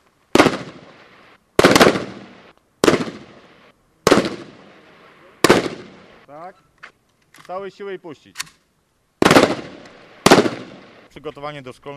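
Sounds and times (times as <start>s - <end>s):
rifle shots fired from a supported position during shooting training: 0.3s - 6.2s, 9.2s - 11.1s
speech: 6.3s - 6.7s, 7.5s - 8.6s, 11.1s - 11.9s.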